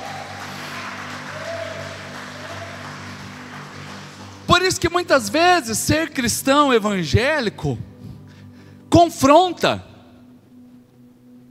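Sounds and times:
audience applauding: 0.0 - 5.5
speech: 4.6 - 7.9, 9.0 - 9.9.

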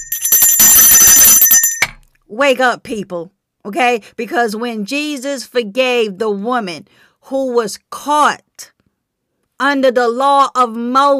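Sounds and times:
hand bell ringing rapidly: 0.0 - 2.0
speech: 2.3 - 8.7, 9.6 - 11.1.

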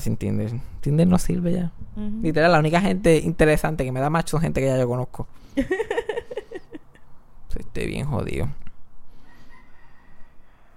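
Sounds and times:
speech: 0.0 - 6.0, 7.6 - 8.6
laughter: 5.6 - 7.0
rooster crowing: 9.2 - 10.7.

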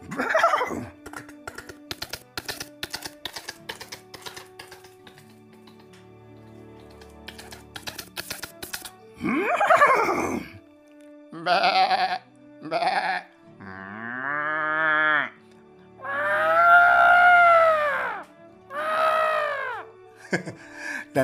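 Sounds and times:
voice imitating a horse's whinny: 9.2 - 10.6, 11.4 - 15.4, 16.0 - 19.9.

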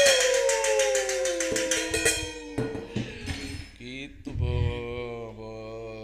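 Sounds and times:
metal cooking pot banged in a protest: 0.0 - 3.8.

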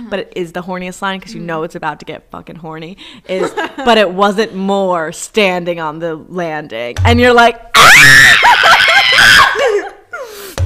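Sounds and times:
speech: 0.1 - 9.8
sharp knock: 7.0 - 7.3
group of people screaming: 7.8 - 9.9
group of people laughing: 8.4 - 10.0.

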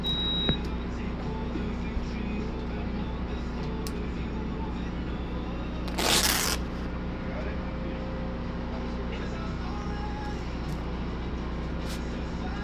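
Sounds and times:
short beep: 0.0 - 0.7
steady low engine-like hum inside a mobile blood donation bus: 0.0 - 12.6.

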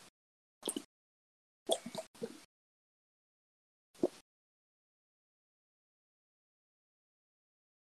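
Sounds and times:
person gulping water: 0.6 - 0.9, 1.7 - 2.5.

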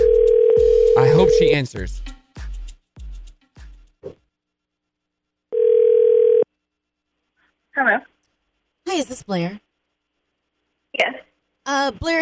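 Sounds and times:
ringback tone on a phone line during an outgoing call: 0.0 - 1.4, 5.5 - 6.4
speech: 1.2 - 2.1, 9.0 - 9.7, 11.0 - 12.2.

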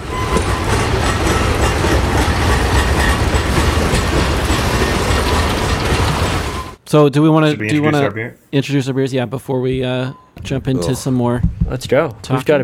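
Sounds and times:
train wheels clacking over track joints: 0.0 - 6.8
train with railroad cars rolling by: 0.0 - 6.8
speech: 6.9 - 12.6.

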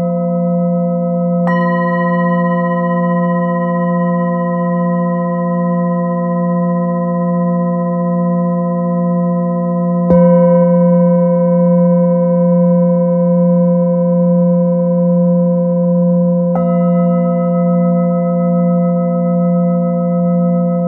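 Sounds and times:
Nepalese singing bowl humming with ringing overtones: 0.0 - 20.8
Nepalese singing bowl strikes: 1.4 - 8.4, 10.0 - 11.0, 16.5 - 20.8.

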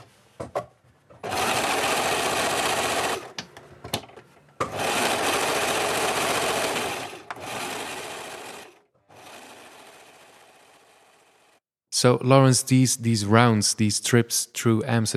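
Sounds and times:
loud sewing machine running with rapid buzzing stitching: 1.2 - 3.4, 4.6 - 11.6
speech: 12.0 - 15.1.

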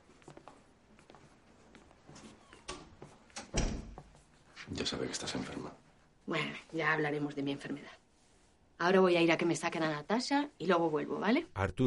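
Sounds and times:
door opening: 2.3 - 4.1
door thud: 3.4 - 4.1
speech: 4.9 - 8.0, 8.8 - 11.8.

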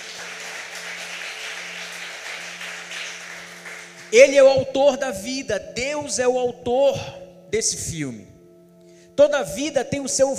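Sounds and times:
audience applauding during a sermon: 0.0 - 4.1
speech: 4.1 - 8.3, 9.2 - 10.3.

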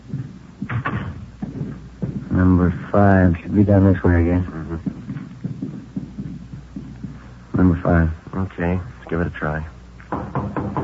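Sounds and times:
low rumbling background: 0.0 - 10.6
front door opening and closing: 0.7 - 1.3
speech: 2.4 - 4.6, 7.6 - 9.8.

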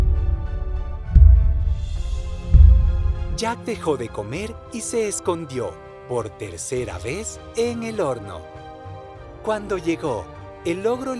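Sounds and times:
deep rumbling low hum: 0.0 - 3.4
heavy booming thumps shaking the ground: 0.0 - 3.4
speech: 3.4 - 8.6, 9.4 - 11.1.

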